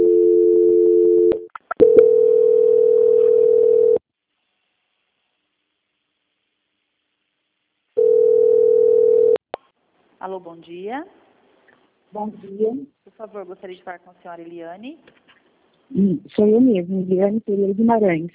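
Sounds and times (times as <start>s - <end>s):
telephone line tone during bank call transfer: 0.0s - 4.0s, 8.0s - 9.4s
speech: 10.3s - 11.2s, 12.1s - 15.3s, 15.9s - 18.3s.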